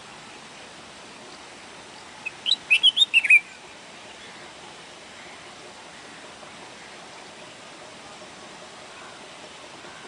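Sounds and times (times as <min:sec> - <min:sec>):
faint hiss: 0:00.0 - 0:10.0
bulbul song phrase of liquid slurred whistled notes: 0:02.2 - 0:03.6.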